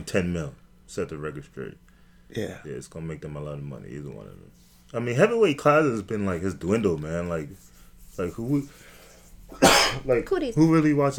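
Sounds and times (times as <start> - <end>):
speech: 0.0 - 8.9, 9.5 - 11.1
person coughing: 9.5 - 10.1.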